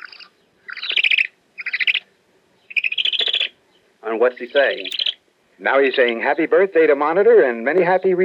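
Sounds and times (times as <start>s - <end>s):
great horned owl calling: 0.0s - 6.3s
speech: 4.1s - 5.0s, 5.6s - 8.2s.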